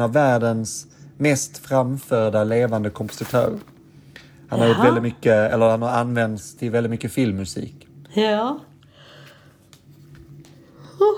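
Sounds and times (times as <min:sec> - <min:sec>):
speech: 0:00.0 - 0:03.8, 0:04.5 - 0:08.7
person yawning: 0:04.6 - 0:05.1.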